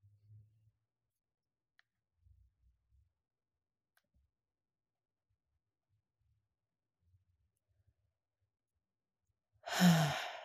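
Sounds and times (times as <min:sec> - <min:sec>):
deep breath in during a calming breathing exercise: 0:09.7 - 0:10.4.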